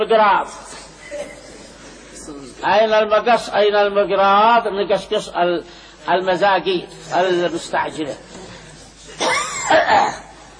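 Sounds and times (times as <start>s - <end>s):
speech: 0.0s - 1.2s, 2.3s - 8.3s, 9.7s - 10.2s
speaker coughing during a lecture: 1.0s - 1.8s, 9.2s - 10.4s.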